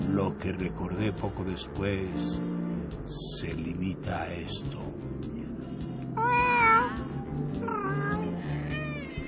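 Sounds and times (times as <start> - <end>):
speech: 0.1 - 5.3
cat meowing: 6.2 - 9.2.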